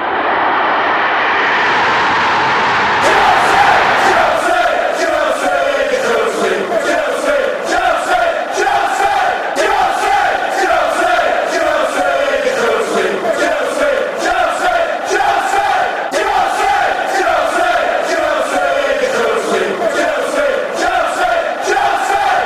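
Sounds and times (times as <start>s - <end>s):
large stadium crowd of football fans roaring and chanting: 0.0s - 22.4s
rhythmic clapping of football fans: 3.0s - 22.4s.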